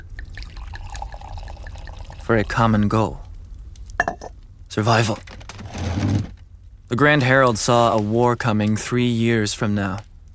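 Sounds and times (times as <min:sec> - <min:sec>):
drink pouring into a glass: 0:00.0 - 0:02.8
speech: 0:02.3 - 0:03.2, 0:04.8 - 0:05.3, 0:06.9 - 0:10.1.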